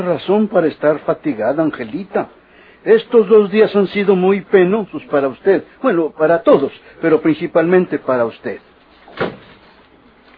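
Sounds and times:
speech: 0.0s - 9.4s
faint hiss: 0.0s - 10.3s
door thump at the back of the house: 9.1s - 9.6s.

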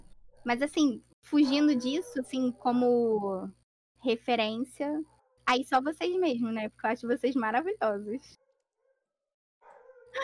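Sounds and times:
speech: 0.4s - 8.4s
dog giving a loud sharp bark: 1.4s - 2.4s, 9.6s - 10.2s.

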